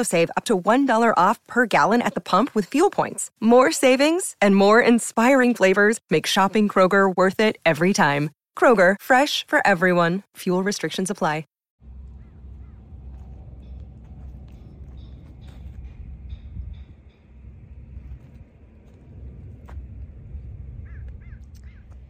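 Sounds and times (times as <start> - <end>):
speech: 0.0 - 11.5
steady low rumble of outdoor noise: 11.8 - 22.0
bird calling: 12.0 - 17.5, 20.8 - 22.0.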